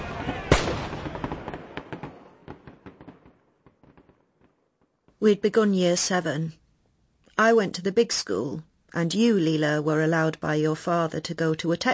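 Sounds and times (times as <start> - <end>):
gunfire: 0.0 - 4.5
speech: 5.2 - 6.6, 7.4 - 11.9.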